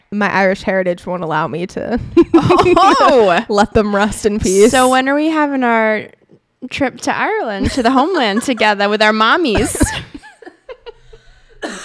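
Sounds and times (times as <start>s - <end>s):
speech: 0.1s - 10.0s
laughter: 2.2s - 3.4s, 7.6s - 11.8s
person coughing: 9.5s - 10.2s, 11.6s - 11.8s.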